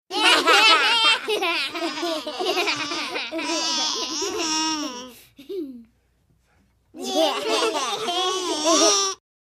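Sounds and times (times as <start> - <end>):
five-year-old child giggling: 0.1 - 5.9, 7.0 - 9.2.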